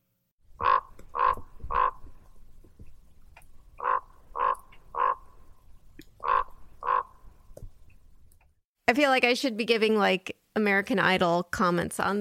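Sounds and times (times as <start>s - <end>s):
raven croaking: 0.5s - 2.4s, 3.7s - 7.4s
speech: 8.9s - 12.1s.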